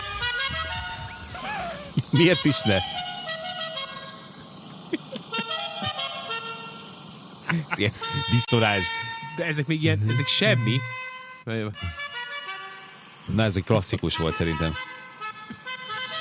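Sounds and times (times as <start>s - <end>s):
melodic car horn playing a short tune: 0.0s - 1.3s, 2.2s - 4.3s, 5.4s - 6.9s, 7.8s - 13.0s, 14.1s - 16.2s
laughter: 0.6s - 2.5s, 4.9s - 6.1s, 7.4s - 9.1s
speech: 2.1s - 3.0s, 7.5s - 12.0s, 13.3s - 14.9s.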